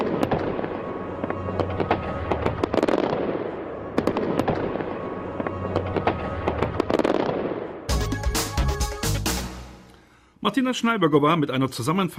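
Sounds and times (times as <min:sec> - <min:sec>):
firecrackers and rockets exploding: 0:00.0 - 0:08.6
speech: 0:10.5 - 0:12.1.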